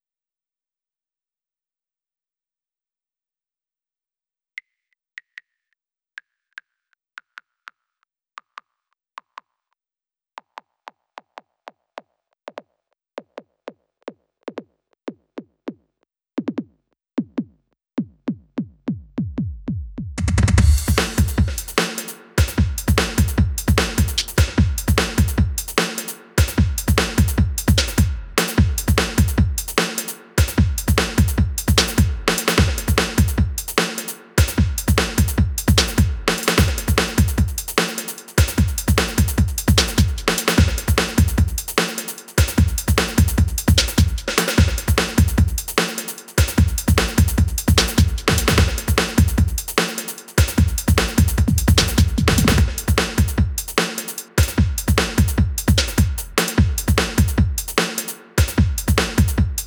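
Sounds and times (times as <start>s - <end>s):
drums: 16.4s - 59.6s.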